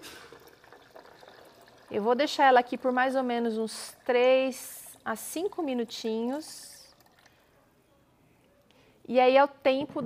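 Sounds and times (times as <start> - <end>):
boiling water poured into a bowl over dry unsoaked nuts: 0.0 - 7.4
speech: 1.9 - 6.7, 9.1 - 10.0.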